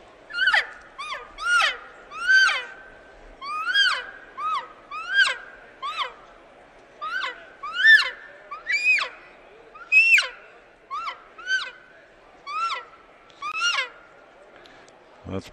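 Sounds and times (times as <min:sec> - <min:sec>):
hunting call blown to imitate a cow call: 0:00.3 - 0:02.8, 0:03.4 - 0:06.2, 0:07.0 - 0:09.2, 0:09.8 - 0:11.8.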